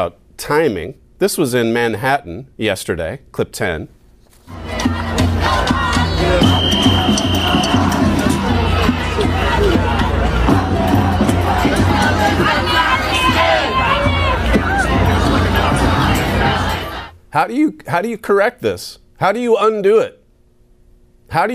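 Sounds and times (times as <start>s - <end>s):
speech: 0.0s - 4.6s, 17.3s - 20.2s, 21.3s - 21.5s
large crowd of protesters chanting and shouting in a city street: 4.5s - 17.2s
whistle: 5.9s - 8.4s.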